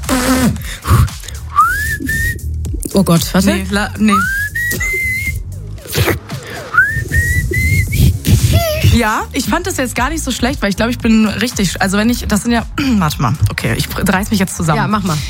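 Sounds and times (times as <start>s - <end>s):
person whistling a tune: 0.8s - 2.5s, 4.1s - 5.5s, 6.5s - 9.0s
speech: 3.0s - 4.4s, 9.0s - 15.2s
person giggling: 5.9s - 9.1s.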